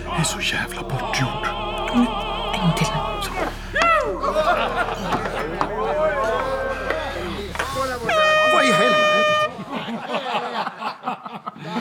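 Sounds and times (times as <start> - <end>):
speech: 0.2 - 5.5
voices and chuckling: 1.6 - 11.8
loud steady air horn blast: 5.7 - 9.8.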